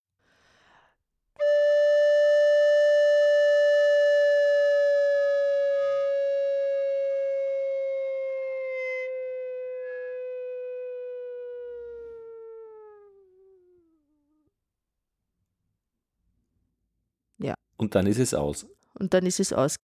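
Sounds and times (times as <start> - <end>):
multiphonic glissando tone rich in overtones sliding down: 1.7 - 14.4
speech: 17.4 - 19.8.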